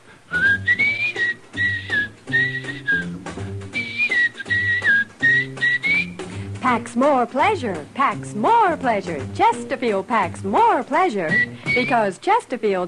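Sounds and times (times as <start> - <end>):
person whistling a bright lilting melody: 0.3 - 6.4, 11.3 - 12.1
steady rhythmic instrumental backing: 0.3 - 12.1
speech: 6.7 - 12.8.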